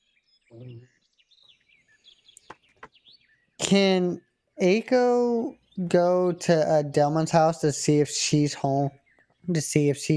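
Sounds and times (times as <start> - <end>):
birds chirping and twittering: 0.0 - 10.1
sharp clicks: 2.4 - 2.9
speech: 3.7 - 10.1.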